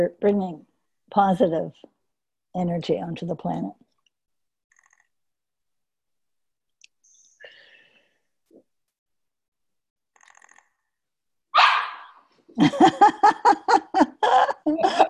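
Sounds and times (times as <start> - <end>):
speech: 0.0 - 1.9, 2.6 - 3.8, 12.6 - 15.0
small dog barking: 11.6 - 12.2
laughter: 12.6 - 15.0.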